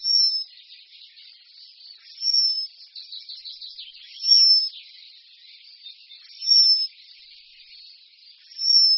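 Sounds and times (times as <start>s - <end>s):
Eurasian penduline tit whistling: 0.0s - 0.5s, 2.1s - 2.7s, 4.0s - 4.7s, 6.3s - 6.9s, 8.5s - 8.9s
Eurasian penduline tit twittering and trilling: 0.0s - 8.9s.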